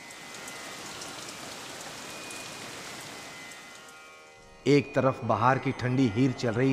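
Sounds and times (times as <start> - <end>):
rain pattering on a surface: 0.0 - 4.1
speech: 4.6 - 6.7.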